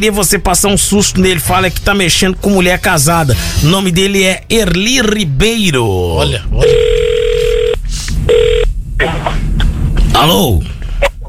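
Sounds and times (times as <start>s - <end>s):
speech: 0.0s - 7.1s, 10.2s - 10.7s
low hum: 0.0s - 11.2s
telephone ringing tone: 6.6s - 8.7s.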